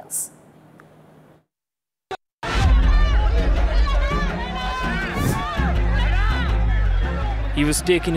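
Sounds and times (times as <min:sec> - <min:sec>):
speech: 0:00.1 - 0:00.4, 0:07.6 - 0:08.1
crowd of party supporters cheering outside a police station: 0:02.4 - 0:08.1.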